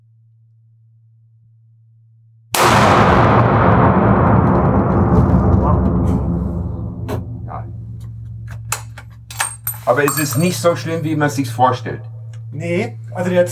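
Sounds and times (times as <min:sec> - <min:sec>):
hunting rifle gunshot with long rolling echo: 0:02.6 - 0:08.5
speech: 0:09.9 - 0:13.5.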